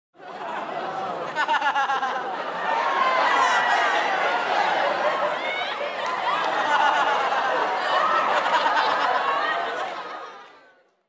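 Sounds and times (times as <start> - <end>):
group of teenagers laughing: 0.2 - 10.7.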